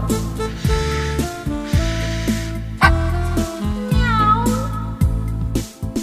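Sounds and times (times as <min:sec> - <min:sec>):
bouncy musical accompaniment with steady bass notes: 0:00.0 - 0:06.0
cats meowing and hissing at a puppy: 0:00.7 - 0:05.0.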